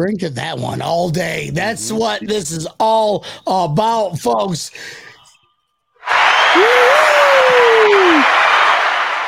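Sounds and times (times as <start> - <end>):
speech: 0.0 - 5.1, 6.1 - 8.3
dense crowd applause: 6.0 - 9.2
person letting out a long sliding whoop: 6.4 - 8.3.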